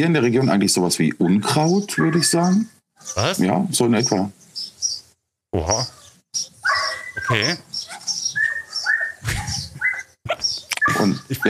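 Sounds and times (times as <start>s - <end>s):
speech: 0.0s - 4.7s, 5.5s - 6.5s, 7.3s - 7.7s, 11.0s - 11.4s
small Chihuahua-sized dog yapping on neighbouring property: 2.0s - 2.3s, 6.6s - 11.2s.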